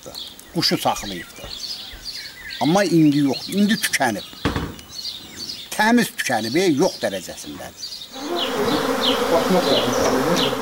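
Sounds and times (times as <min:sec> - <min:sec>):
speech: 0:00.0 - 0:01.6, 0:02.6 - 0:04.4, 0:05.8 - 0:10.6
honeybees buzzing on a homestead vegetable farm: 0:07.8 - 0:10.6.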